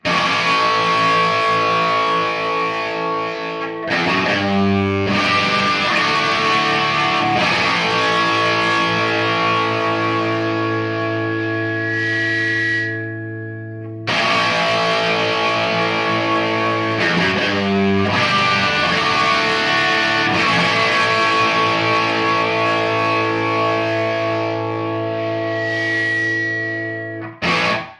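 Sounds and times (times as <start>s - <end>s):
Les Paul Jr guitar through Marshall Superlead amplifier with bright and deep on hotplate: 0.0s - 27.9s.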